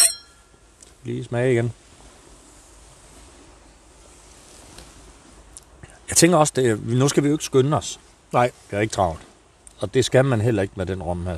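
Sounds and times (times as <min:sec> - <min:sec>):
glasses of rum clinking in a toast: 0:00.0 - 0:00.5
speech: 0:01.0 - 0:01.8, 0:06.2 - 0:11.3.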